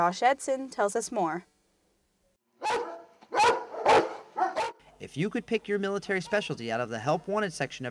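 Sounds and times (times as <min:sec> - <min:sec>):
speech: 0:00.0 - 0:01.5, 0:05.0 - 0:07.8
military working dog barking loud and deep: 0:02.6 - 0:04.9, 0:06.2 - 0:06.6.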